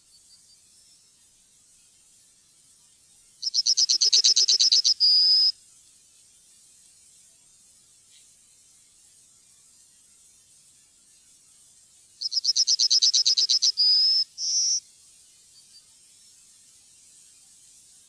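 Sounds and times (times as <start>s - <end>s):
Yellowhammer song: 0.0s - 1.4s, 3.1s - 5.6s, 9.7s - 17.7s.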